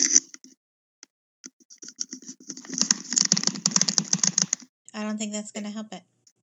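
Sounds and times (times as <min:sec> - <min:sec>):
rapid clicking from a caller's device on the phone line: 0:01.7 - 0:04.7
speech: 0:05.0 - 0:06.2.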